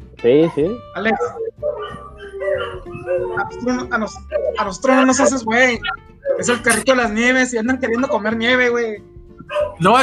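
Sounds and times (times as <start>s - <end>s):
speech: 0.2s - 1.4s, 2.6s - 9.1s, 9.8s - 10.0s
dogs howling set off by a passing ambulance: 0.4s - 6.9s, 9.4s - 10.0s
passing ambulance siren droning: 1.1s - 6.8s.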